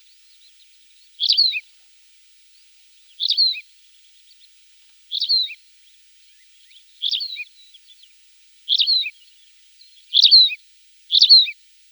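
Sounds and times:
tawny pipit singing chirped phrases: 0:01.2 - 0:01.6, 0:03.1 - 0:03.6, 0:05.1 - 0:05.6, 0:06.6 - 0:08.1, 0:08.7 - 0:11.6.

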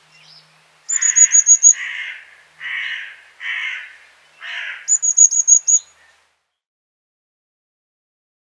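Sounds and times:
Eurasian blue tit rapid very high-pitched repeated notes: 0:00.2 - 0:06.1
Eurasian blue tit harsh buzzy churring calls: 0:00.9 - 0:05.9.

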